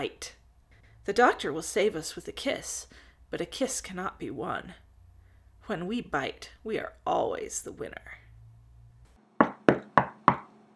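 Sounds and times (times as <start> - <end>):
speech: 0.0 - 0.4, 1.0 - 4.8, 5.7 - 8.2
sharp knocks with hollow decay: 9.4 - 10.5.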